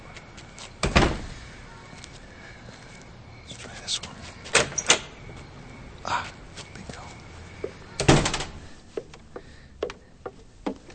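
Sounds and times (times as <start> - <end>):
basement door being pulled open with a clunk: 0.8 - 1.3, 4.5 - 5.1, 8.0 - 8.6
door rattle: 8.0 - 8.6.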